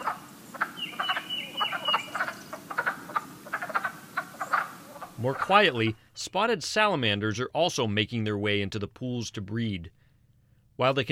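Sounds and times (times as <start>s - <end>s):
wood frogs breeding chorus clucking and croaking in a fishless wetland pool: 0.0s - 5.7s
speech: 5.2s - 10.0s, 10.8s - 11.0s.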